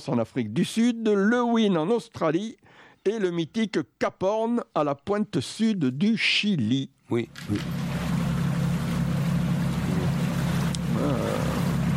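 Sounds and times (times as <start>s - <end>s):
speech: 0.0s - 7.9s
boat engine droning on the water: 7.3s - 11.9s
faint splashing: 7.4s - 11.9s.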